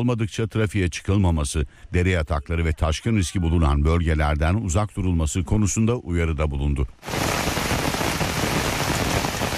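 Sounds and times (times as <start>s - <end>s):
speech: 0.0s - 7.5s
heavy rain downpour in the Fatsa district of Ordu, Turkey: 7.0s - 9.5s.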